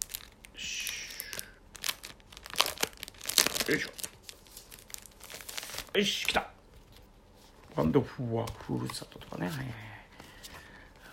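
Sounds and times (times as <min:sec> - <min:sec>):
plastic wrapping on a postcard crinkling and tearing: 0:00.0 - 0:07.0
speech: 0:03.7 - 0:04.0, 0:06.0 - 0:06.5, 0:07.8 - 0:09.9.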